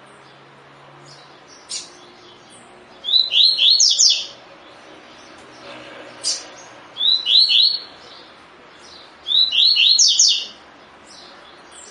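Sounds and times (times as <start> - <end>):
Double-collared seedeater tui tui song of high slurred whistles: 1.1 - 4.4, 7.0 - 8.2, 8.8 - 11.8.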